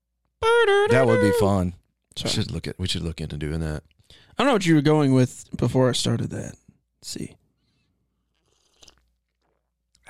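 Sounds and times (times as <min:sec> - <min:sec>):
speech: 0:00.6 - 0:07.4
sipping coffee: 0:08.3 - 0:09.7.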